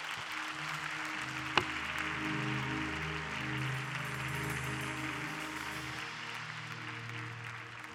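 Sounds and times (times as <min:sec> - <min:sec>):
audience clapping: 0:00.0 - 0:07.9.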